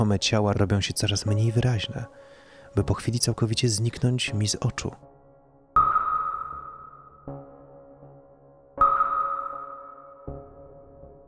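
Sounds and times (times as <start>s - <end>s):
speech: 0.0s - 5.1s
soft secondary electronic blip: 5.8s - 7.3s, 8.8s - 10.2s
sonar-like electronic scanner pings: 5.8s - 8.2s, 8.8s - 10.9s.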